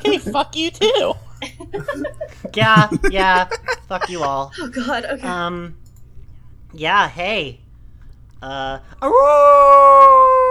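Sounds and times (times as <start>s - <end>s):
laughter: 0.0s - 5.6s
speech: 0.2s - 5.8s, 6.7s - 7.6s, 8.4s - 10.4s
person imitating a wolf howl: 9.2s - 10.4s.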